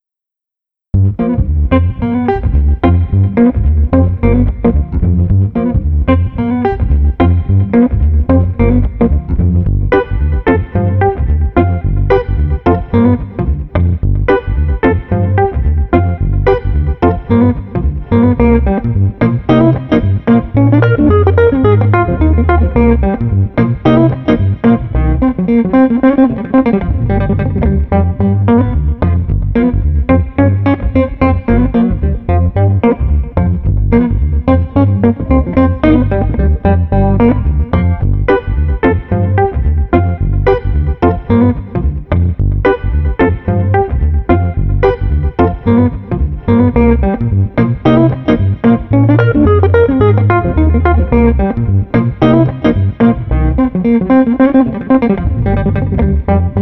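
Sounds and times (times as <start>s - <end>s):
smooth street guitar: 1.0s - 56.6s.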